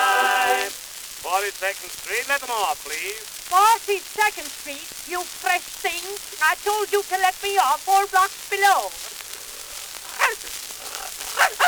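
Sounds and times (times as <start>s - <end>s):
steady hiss: 0.0s - 11.6s
speech: 1.4s - 9.2s, 11.4s - 11.6s
dog barking: 10.1s - 11.6s.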